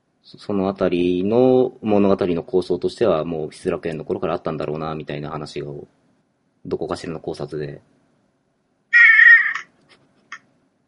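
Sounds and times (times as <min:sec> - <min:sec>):
speech: 0:00.2 - 0:06.0, 0:06.6 - 0:07.9
cat chirps: 0:09.0 - 0:09.7.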